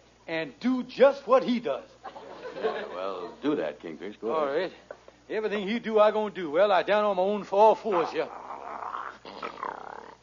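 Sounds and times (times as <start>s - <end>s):
speech: 0.3s - 8.4s
laughter: 2.0s - 3.6s
dog snarling growl: 8.0s - 10.2s.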